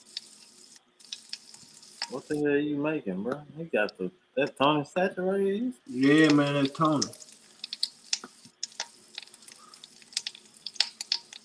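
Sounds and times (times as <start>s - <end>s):
chicken breasts sizzling in garlic butter in a hot skillet: 0.0s - 2.4s, 5.9s - 11.4s
speech: 2.1s - 7.2s.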